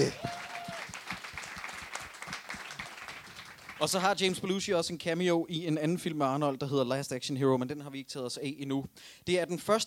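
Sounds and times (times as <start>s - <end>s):
few people clapping hands: 0.0s - 4.5s
speech: 3.8s - 9.8s.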